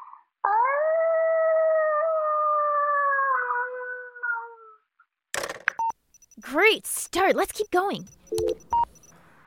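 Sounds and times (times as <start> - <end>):
child imitating a wolf howl: 0.0 - 4.9
speech: 6.4 - 8.8.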